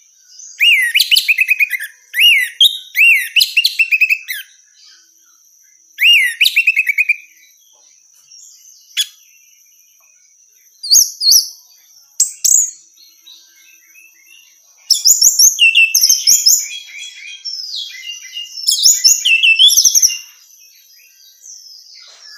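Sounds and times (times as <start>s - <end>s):
female orange-headed thrush calling buzzy chirps: 0.0s - 20.7s.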